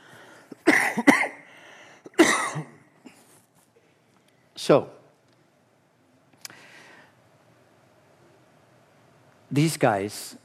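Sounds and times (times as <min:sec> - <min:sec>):
harsh coughs: 0:00.5 - 0:01.5, 0:02.1 - 0:03.3
speech: 0:04.7 - 0:05.0, 0:09.5 - 0:10.4.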